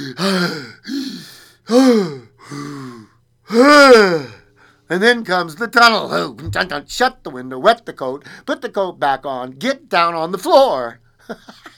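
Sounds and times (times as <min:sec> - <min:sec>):
person gasping for fresh air at an open window: 0:00.0 - 0:04.4
speech: 0:00.1 - 0:01.0, 0:01.7 - 0:02.1, 0:04.9 - 0:11.7.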